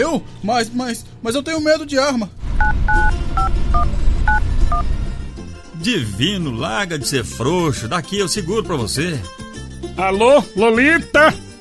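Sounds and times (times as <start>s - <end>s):
speech: 0.0s - 4.1s, 4.7s - 5.1s, 5.8s - 9.4s, 10.0s - 11.4s
telephone keypad dialing tones: 2.6s - 4.8s.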